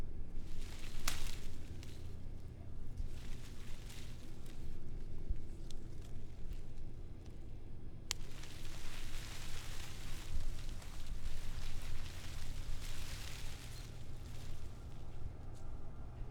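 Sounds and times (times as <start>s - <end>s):
tree leaves rustling: 0.2s - 16.2s.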